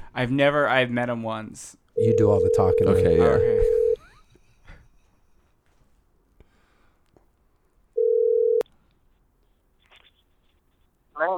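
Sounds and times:
speech: 0:00.2 - 0:03.8
outgoing phone call ringing tone: 0:02.0 - 0:04.0, 0:08.0 - 0:08.6.

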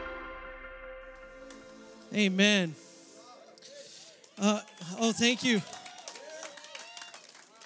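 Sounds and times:
speech: 0:02.2 - 0:02.8, 0:04.4 - 0:05.8
audience clapping: 0:04.2 - 0:07.6.

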